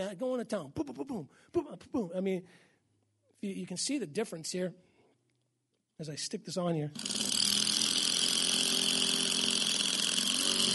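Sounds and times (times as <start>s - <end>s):
speech: 0.0s - 2.7s, 3.4s - 4.9s, 6.0s - 7.3s
cordless power drill driving in a screw: 7.0s - 10.7s.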